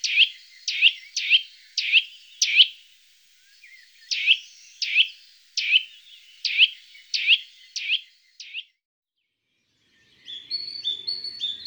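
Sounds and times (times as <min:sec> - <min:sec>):
Eurasian nuthatch giving whistled tuit calls: 0:00.0 - 0:02.8, 0:03.5 - 0:08.7.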